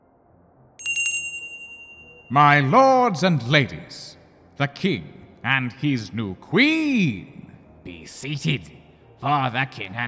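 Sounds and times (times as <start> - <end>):
small bell on a pull device ringing: 0.8 - 2.4
speech: 2.3 - 10.0.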